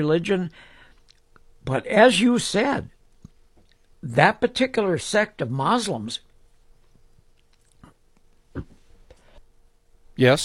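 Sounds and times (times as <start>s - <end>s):
speech: 0.0s - 0.7s, 1.6s - 3.0s, 4.0s - 6.3s, 10.2s - 10.4s
person chewing gum with soft wet clicks and smacking: 1.0s - 1.4s, 7.3s - 8.7s.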